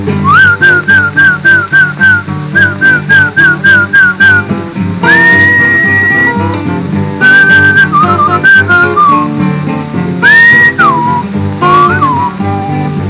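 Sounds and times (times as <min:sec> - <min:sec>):
person whistling to call a horse: 0:00.2 - 0:04.5, 0:05.1 - 0:06.4, 0:07.2 - 0:09.3, 0:10.2 - 0:12.9.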